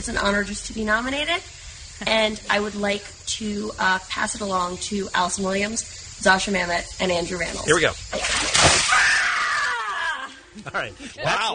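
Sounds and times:
speech: 0.0s - 8.4s, 10.6s - 11.5s
bucket of ice water poured over a woman: 8.1s - 9.7s
woman screaming under ice water during an ice bucket challenge: 8.8s - 10.4s
laughter: 9.6s - 11.5s.

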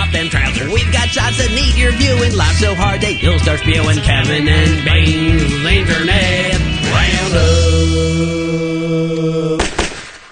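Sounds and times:
speech: 0.2s - 9.6s
sustained harmonic tone: 1.8s - 8.7s
gunshots fired into the air: 9.6s - 10.3s.

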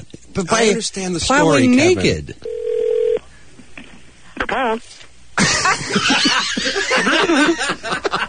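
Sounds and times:
speech: 0.4s - 2.5s, 4.6s - 5.0s, 6.0s - 8.0s
telephone dialing tone: 2.5s - 3.2s
people laughing: 5.4s - 8.2s.

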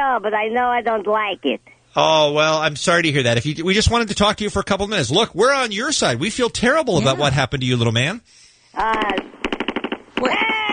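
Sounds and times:
speech: 0.0s - 9.3s
rapid machine-gun fire: 8.8s - 10.7s.

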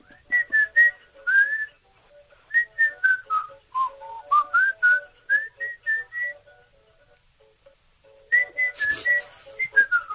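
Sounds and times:
man whistling a melody: 0.0s - 1.8s, 2.5s - 6.5s, 8.3s - 10.1s.

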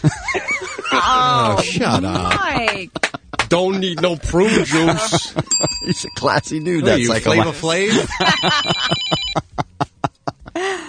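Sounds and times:
laughter: 0.0s - 6.1s, 7.0s - 10.8s
speech: 0.0s - 9.5s
telephone ringing with short electronic bursts: 5.4s - 9.4s.

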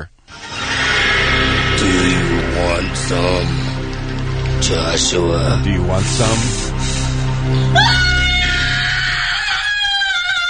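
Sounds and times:
piercing horror film scream: 0.3s - 4.6s, 7.5s - 10.4s
low rumble: 0.3s - 9.7s
speech: 2.8s - 3.7s, 4.6s - 8.1s.

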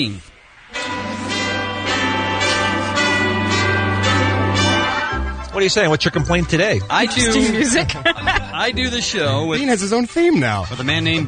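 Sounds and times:
speech: 0.0s - 1.0s, 5.6s - 11.2s
sustained humming note: 0.7s - 5.5s
bright ringing doorbell chime: 0.8s - 5.5s
laughter: 5.2s - 9.7s.

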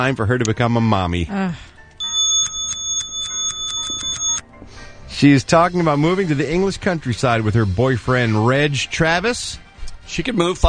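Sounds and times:
speech: 0.0s - 1.7s, 5.2s - 10.6s
bright sustained ringing tone in clock sound effect: 2.0s - 4.4s
clock ticking sound effect: 2.0s - 4.4s.

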